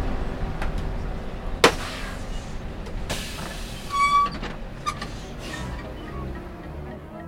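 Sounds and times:
school bus rumbling while driving: 0:00.0 - 0:07.2
sharp knock: 0:01.6 - 0:02.2
rattles and clanks of a moving school bus: 0:01.6 - 0:06.1
squeaky whine: 0:03.4 - 0:06.5.

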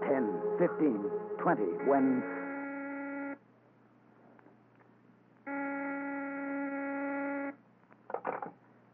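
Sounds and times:
speech: 0:00.1 - 0:02.4
harsh telephone or intercom electric buzzer ringing: 0:01.1 - 0:03.4, 0:05.5 - 0:07.6
clunk or rustle: 0:08.1 - 0:08.6.

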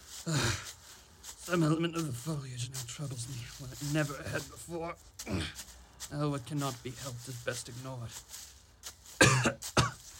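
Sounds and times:
speech: 0:00.2 - 0:00.5, 0:01.5 - 0:08.5
faint breathy intake: 0:00.2 - 0:00.7
harsh coughs: 0:09.2 - 0:10.0.

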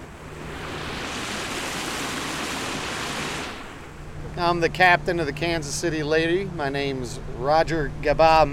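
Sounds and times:
river water churning during boat trip: 0:00.0 - 0:04.2
speech: 0:04.4 - 0:08.5.

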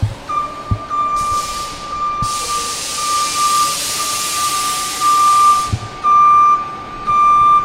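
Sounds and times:
idling bus engines rumbling: 0:00.0 - 0:07.6
steady electronic tone: 0:00.0 - 0:07.6
long loud hiss of bus air brakes: 0:01.0 - 0:06.0.

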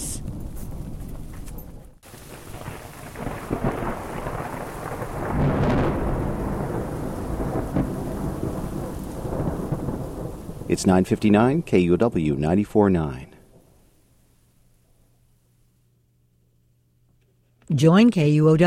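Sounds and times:
deep thunder rumbling during a storm: 0:00.0 - 0:14.0
steady downpour of rain: 0:02.0 - 0:13.2
speech: 0:10.7 - 0:13.3, 0:17.8 - 0:18.6.

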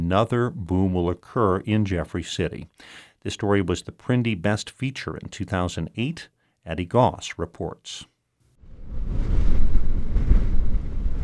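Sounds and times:
speech: 0:00.1 - 0:08.1
violent wind buffeting a car heard from inside: 0:08.8 - 0:11.2.

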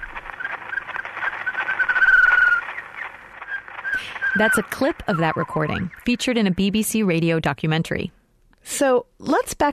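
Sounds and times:
phonograph surface hiss and crackle: 0:00.0 - 0:06.8
songbird warbling trill on 1889 phonograph recording: 0:00.4 - 0:06.6
speech: 0:04.4 - 0:09.7.

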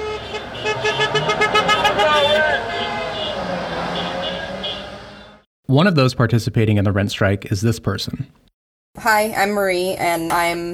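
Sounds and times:
parade of cars honking horns: 0:00.0 - 0:05.4
street noise: 0:00.0 - 0:05.5
indistinct voices: 0:01.0 - 0:04.6
speech: 0:05.7 - 0:10.7.

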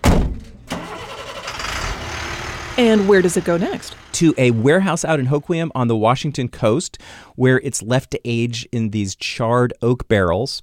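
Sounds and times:
truck engine rumbling at a distillery: 0:00.4 - 0:06.9
speech: 0:02.8 - 0:10.6.

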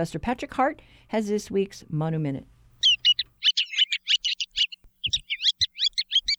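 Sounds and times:
speech: 0:00.0 - 0:02.5
Ruddy turnstone rattling call: 0:02.8 - 0:06.3.

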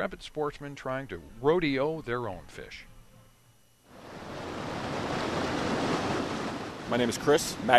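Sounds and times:
speech: 0:00.0 - 0:02.9, 0:06.9 - 0:07.7
Grand River water rushing past its banks at the Riverwalk in Old Town: 0:04.0 - 0:07.7.

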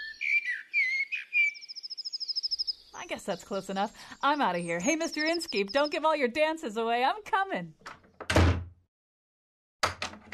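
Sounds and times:
birds whistling and calling: 0:00.0 - 0:06.0
speech: 0:03.0 - 0:07.9.

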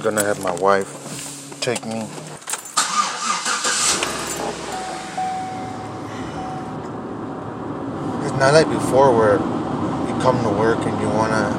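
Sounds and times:
speech: 0:00.0 - 0:01.0, 0:01.6 - 0:02.2, 0:08.4 - 0:09.6, 0:10.2 - 0:11.5
car engine cranking and starting: 0:00.0 - 0:11.5
car engine in steady idle hum: 0:02.7 - 0:11.5.

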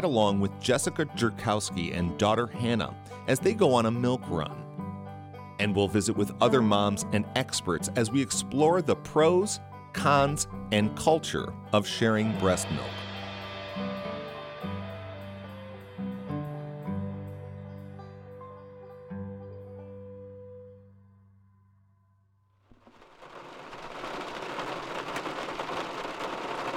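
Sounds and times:
speech: 0:00.0 - 0:04.6, 0:05.6 - 0:13.0
gentle melodic passage: 0:00.0 - 0:13.1, 0:13.7 - 0:21.0
steady soft rain on a spring morning: 0:22.7 - 0:26.7.

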